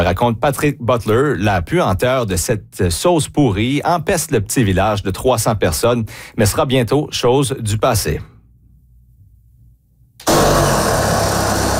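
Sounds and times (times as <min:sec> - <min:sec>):
speech: 0:00.0 - 0:08.3
saw cutting into a large plastic tank: 0:10.2 - 0:11.7.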